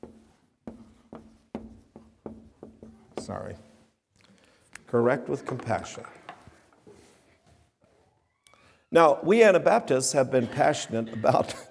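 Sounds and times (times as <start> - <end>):
writing on a board in front of an audience: 0.0 - 3.9
speech: 3.2 - 3.7, 4.9 - 6.2, 8.9 - 11.6.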